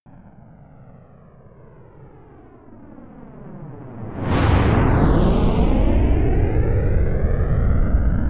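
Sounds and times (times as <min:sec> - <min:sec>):
space shuttle rocket flying by fast: 0:03.6 - 0:08.1.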